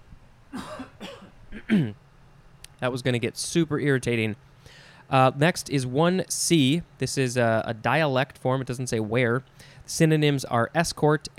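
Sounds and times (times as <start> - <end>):
person coughing to clear a scratchy throat: 0.6 - 2.0
speech: 1.7 - 2.0, 2.8 - 11.3.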